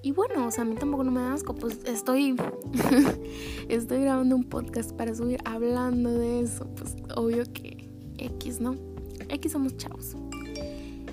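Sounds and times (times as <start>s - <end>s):
speech: 0.0s - 10.2s
laughter: 2.7s - 3.2s
mobile phone electronic notification chime: 10.3s - 11.0s.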